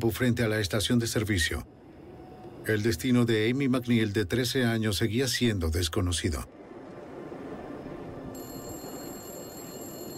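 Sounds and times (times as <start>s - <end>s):
speech: 0.0s - 1.8s, 2.6s - 6.6s
public payphone metallic bell ringing: 8.4s - 10.1s.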